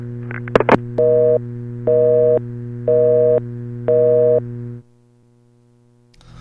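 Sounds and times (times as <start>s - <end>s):
low electrical hum: 0.0s - 6.3s
phone busy tone beeps: 1.0s - 4.4s.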